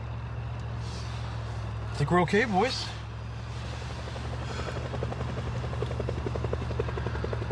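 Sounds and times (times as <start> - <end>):
police helicopter low engine rumble: 0.0 - 7.5
speech: 2.0 - 3.0
police helicopter rotor thumping: 2.6 - 7.5.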